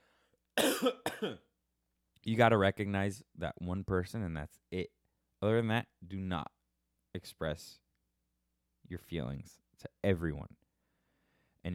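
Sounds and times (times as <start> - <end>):
harsh cough clearing something from the throat: 0.6 - 1.5
speech: 0.8 - 1.5, 2.2 - 7.8, 8.9 - 10.6.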